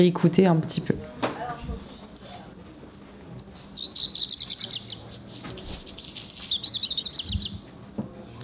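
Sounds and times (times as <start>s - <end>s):
speech: 0.0s - 1.2s
black redstart singing: 3.6s - 7.7s.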